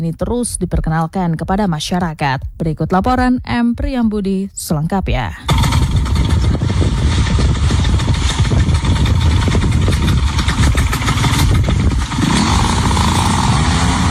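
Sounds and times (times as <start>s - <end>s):
speech: 0.0s - 5.8s
paramotor small engine running in Lampung Province Indonesia: 5.4s - 14.0s.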